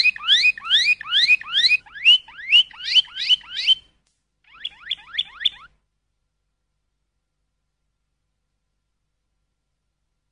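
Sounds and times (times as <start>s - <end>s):
canary singing rising slurred whistles: 0.0s - 5.8s.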